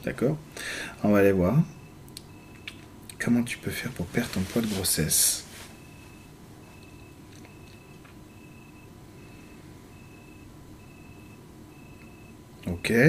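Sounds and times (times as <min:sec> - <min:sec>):
speech: 0:00.0 - 0:01.8, 0:03.2 - 0:05.5, 0:12.8 - 0:13.0
cricket chirping: 0:05.9 - 0:12.4.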